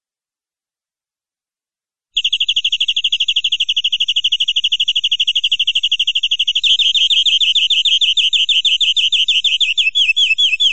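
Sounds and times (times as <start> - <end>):
canary song used as a tutor for training birds: 2.2 - 10.7.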